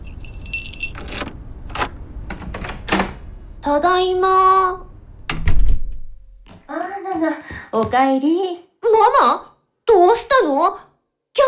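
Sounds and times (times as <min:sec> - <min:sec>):
keys jangling at a front door lock: 0:00.0 - 0:03.2
speech: 0:03.6 - 0:04.8, 0:07.2 - 0:11.4.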